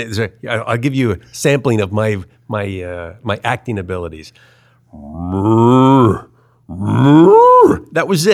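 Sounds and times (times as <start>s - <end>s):
speech: 0.0s - 8.3s
man imitating a bull's moo: 4.9s - 7.9s.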